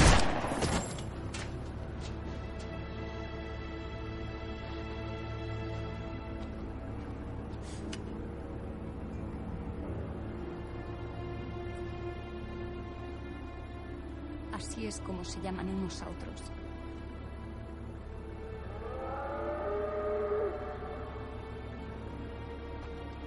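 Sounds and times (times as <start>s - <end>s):
gunshot fired at a zombie: 0.0s - 1.0s
sustained tonal backdrop: 0.0s - 23.2s
speech: 14.6s - 16.6s.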